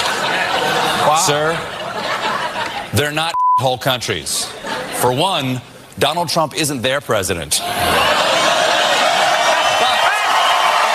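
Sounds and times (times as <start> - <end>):
laughter: 0.0 - 3.0, 7.6 - 9.9
speech: 1.2 - 1.8, 2.9 - 8.2
sustained applause from a large studio audience: 8.0 - 10.9.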